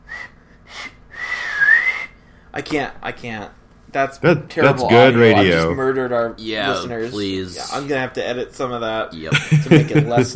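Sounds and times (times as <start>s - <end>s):
person whistling breathy toots and a sliding whistle: 0.0s - 2.2s
speech: 2.6s - 10.3s
laughter: 9.2s - 10.3s.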